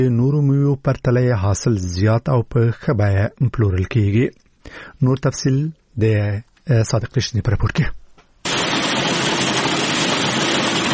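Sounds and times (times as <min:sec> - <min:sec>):
speech: 0:00.0 - 0:08.0
machine cleaning harvested pistachios in Kandahar's Daman district: 0:08.5 - 0:10.9.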